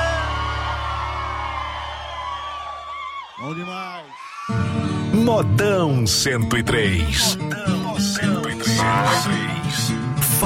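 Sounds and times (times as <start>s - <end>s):
large crowd cheering with whoops and shouts: 0.0s - 4.8s
speech: 3.4s - 10.4s.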